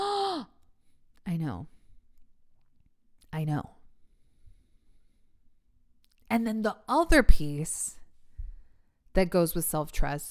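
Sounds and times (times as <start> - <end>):
loud theatrical vocal gasp: 0.0 - 0.6
speech: 1.4 - 1.8, 3.3 - 3.8, 6.3 - 8.0, 9.2 - 10.2.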